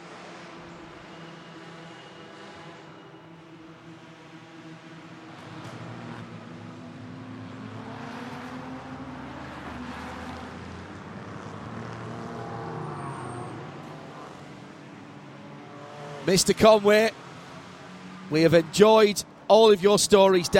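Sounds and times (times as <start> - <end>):
race cars roaring around a track: 0.0 - 20.5
speech: 16.3 - 17.2, 18.3 - 20.5.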